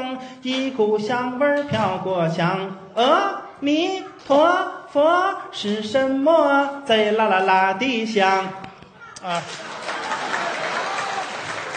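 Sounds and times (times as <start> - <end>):
speech: 0.1 - 8.6, 9.2 - 9.8
audience applause: 9.4 - 11.7.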